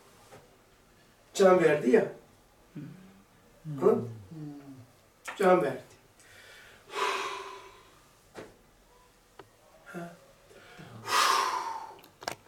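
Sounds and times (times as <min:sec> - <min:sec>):
speech: 0:01.4 - 0:02.2, 0:02.8 - 0:03.0, 0:03.6 - 0:04.5, 0:05.4 - 0:05.9
person blowing out breath imitating a trumpet: 0:06.4 - 0:08.0, 0:10.8 - 0:12.1.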